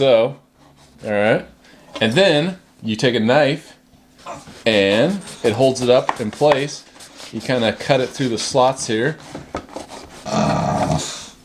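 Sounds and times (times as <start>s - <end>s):
speech: 0.0s - 0.4s, 1.0s - 9.6s
rustling: 4.1s - 10.4s
dog growling: 4.2s - 4.7s, 10.2s - 11.3s.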